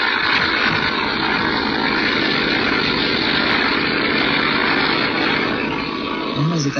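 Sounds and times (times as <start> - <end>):
heavily loaded propeller plane engine roaring at full power on takeoff: 0.0 - 6.7.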